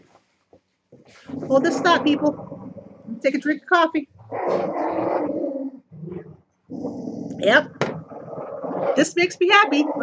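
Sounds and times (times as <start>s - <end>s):
speech: 1.1s - 2.5s, 3.2s - 4.8s, 7.4s - 7.8s, 9.0s - 10.0s
dogs growling: 1.2s - 3.3s, 4.2s - 10.0s.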